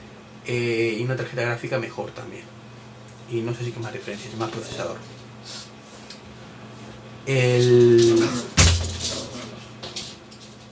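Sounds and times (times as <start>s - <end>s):
speech: 0.5s - 2.6s, 3.3s - 5.6s, 7.2s - 8.6s
female dog making a loud thump against a door: 8.6s - 9.2s.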